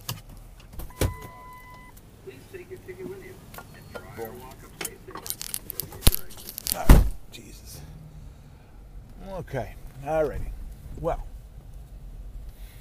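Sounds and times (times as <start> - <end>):
frozen car door cracking and scraping as it is forced open: 5.2 - 7.0
car door latch clunk in frigid weather: 6.7 - 7.2
car door thud: 6.8 - 7.2
speech: 9.5 - 11.3.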